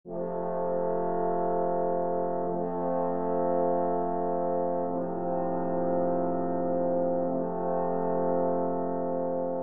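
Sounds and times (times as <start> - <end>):
four-part brass ensemble playing: 0.1 - 9.6.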